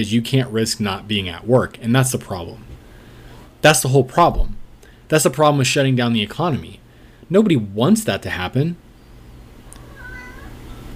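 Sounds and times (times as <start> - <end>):
speech: 0.0 - 2.7, 3.6 - 8.8
low steady hum: 0.0 - 10.9
cat meowing: 9.7 - 10.9.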